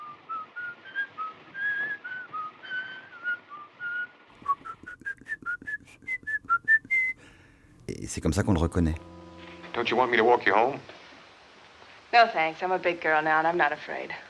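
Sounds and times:
man whistling a melody: 0.0s - 7.5s
faint hiss: 0.0s - 14.2s
speech: 8.1s - 9.1s, 9.8s - 11.0s, 12.1s - 14.2s.

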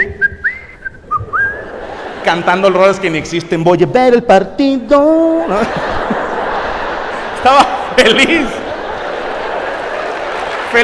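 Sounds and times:
person whistling a short wavering tune: 0.0s - 1.6s
laughter: 1.2s - 3.6s, 5.1s - 10.8s
speech: 2.2s - 6.0s, 7.4s - 8.6s.

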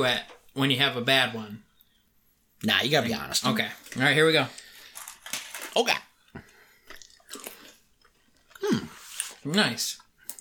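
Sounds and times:
speech: 0.0s - 1.7s, 2.6s - 4.6s, 5.8s - 6.5s, 8.6s - 10.0s
crunchy chewing of hard candy: 4.5s - 9.5s.

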